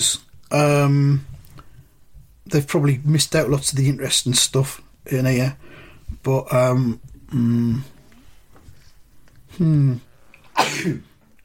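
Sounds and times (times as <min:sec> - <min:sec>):
speech: 0:00.0 - 0:01.3, 0:02.5 - 0:07.9, 0:09.6 - 0:10.1, 0:10.8 - 0:11.1
person sneezing: 0:10.6 - 0:11.1.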